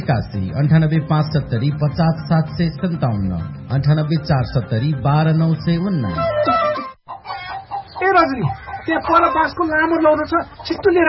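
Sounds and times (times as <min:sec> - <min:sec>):
speech: 0:00.0 - 0:06.9, 0:08.0 - 0:11.0
chickens clucking and squawking at a chicken farm: 0:03.0 - 0:11.0.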